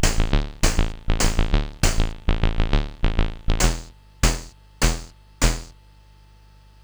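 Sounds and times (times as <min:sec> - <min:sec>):
drum: 0:00.0 - 0:02.2, 0:03.6 - 0:05.7.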